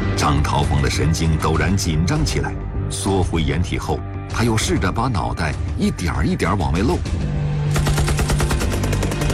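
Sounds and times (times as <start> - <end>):
speech: 0.2 - 7.5
machine gun burst sound effect: 7.7 - 9.3.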